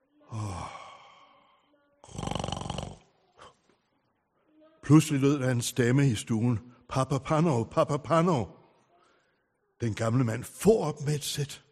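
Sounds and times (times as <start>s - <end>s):
old man snoring while sleeping: 0.3s - 1.2s, 2.0s - 3.1s
speech: 4.9s - 8.6s, 9.8s - 11.6s.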